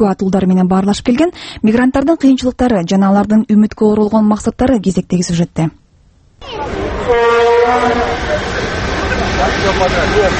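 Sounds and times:
speech: 0:00.0 - 0:05.8, 0:06.4 - 0:10.3
17-car passenger train departing a station: 0:06.4 - 0:10.3.

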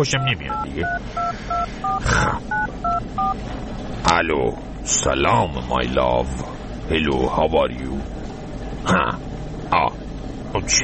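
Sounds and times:
touch-tone beeps of a telephone number being dialed: 0:00.0 - 0:03.4
speech: 0:00.0 - 0:10.8.

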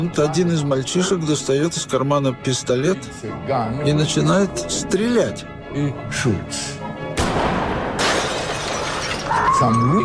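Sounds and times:
speech: 0:00.0 - 0:06.8, 0:09.6 - 0:10.0
falling glass shards: 0:08.0 - 0:09.7
glass shattering: 0:08.0 - 0:10.0.

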